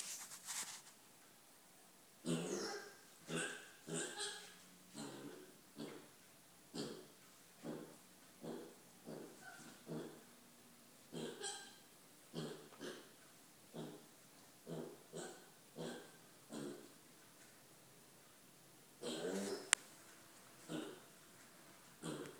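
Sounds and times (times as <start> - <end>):
pig oinking and squealing: 2.2 - 6.1, 6.7 - 10.2, 11.1 - 13.2, 13.8 - 16.9, 19.0 - 19.8, 20.7 - 21.0, 22.0 - 22.3.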